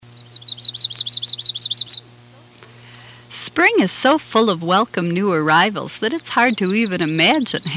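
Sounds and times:
yellow-rumped warbler song trill: 0.0s - 4.2s, 5.3s - 7.7s
steady low hum: 0.0s - 7.7s
speech: 3.6s - 7.7s.

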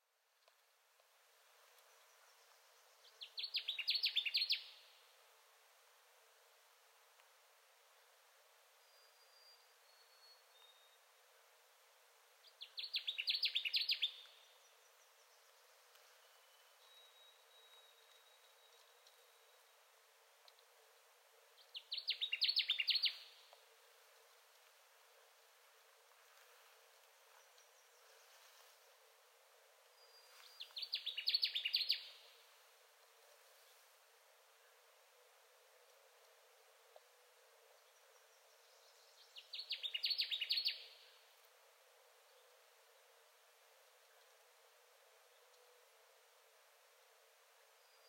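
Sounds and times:
Connecticut Warbler singing: 3.0s - 4.8s, 12.5s - 19.6s, 21.6s - 23.4s, 30.0s - 32.2s, 37.9s - 41.2s.

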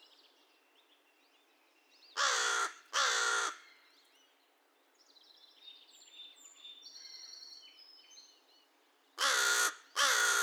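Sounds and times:
American crow cawing: 2.2s - 3.7s, 9.2s - 10.4s.

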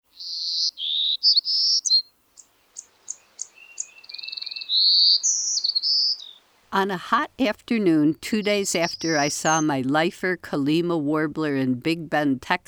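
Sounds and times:
Golden-cheeked Warbler singing in central Texas: 0.1s - 6.8s, 8.0s - 9.8s
speech: 6.8s - 12.6s.

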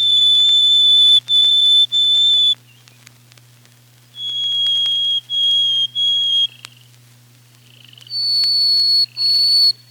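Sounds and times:
Harris's sparrow singing clear pure whistles: 0.0s - 2.9s, 4.1s - 6.9s, 7.6s - 9.8s
faint low hum: 0.0s - 9.8s.

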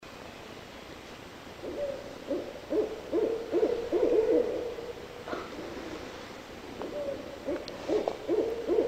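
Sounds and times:
barred owl hooting in short notes: 1.6s - 5.8s, 6.8s - 8.8s.

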